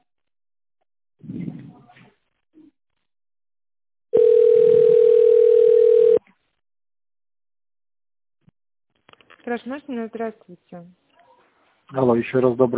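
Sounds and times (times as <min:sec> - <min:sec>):
telephone line tone while a caller waits to be connected: 0:04.1 - 0:06.2
speech: 0:09.5 - 0:11.0, 0:11.9 - 0:12.7.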